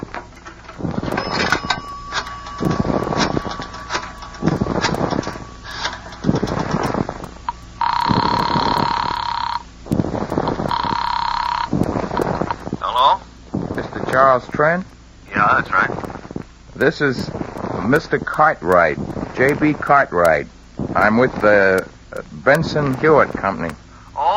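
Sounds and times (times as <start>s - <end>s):
telephone ringing: 0.0s - 12.6s
rhythmic clicking pulses: 0.0s - 24.3s
speech: 16.8s - 23.8s.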